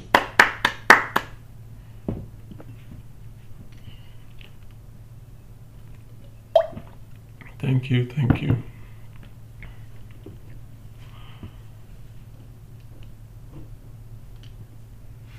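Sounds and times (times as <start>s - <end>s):
small audience clapping: 0.0s - 1.4s
low room hum: 0.0s - 15.3s
speech: 7.7s - 8.7s.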